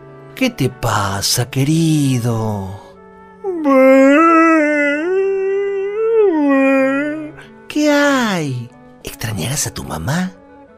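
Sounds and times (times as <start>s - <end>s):
speech: 0.4s - 2.9s, 3.6s - 4.2s, 8.4s - 10.4s
elephant crying and wailing: 3.5s - 7.4s.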